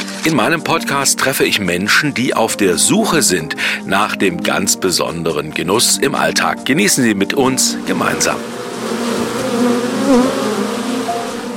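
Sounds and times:
speech: 0:00.2 - 0:09.0, 0:09.6 - 0:10.4
many bees buzzing at a beehive stand: 0:07.6 - 0:11.5.

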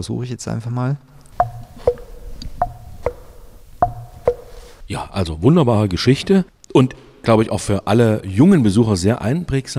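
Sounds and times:
speech: 0:00.0 - 0:01.2, 0:04.9 - 0:09.7
two stove columns struck giving cuckoo-like tones: 0:01.4 - 0:04.7.

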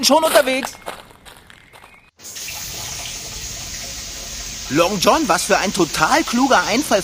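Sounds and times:
speech: 0:00.0 - 0:00.9, 0:04.7 - 0:07.0
water gushing from a hose: 0:02.2 - 0:07.0.

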